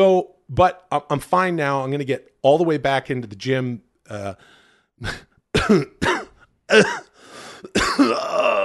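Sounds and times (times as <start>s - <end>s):
speech: 0.0s - 8.6s
harsh strained painful coughing: 5.0s - 8.6s.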